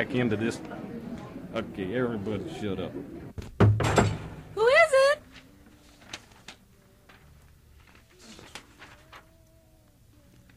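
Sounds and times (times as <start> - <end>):
speech: 0.0 - 0.9, 1.5 - 3.2
knocking on a door: 3.6 - 4.2.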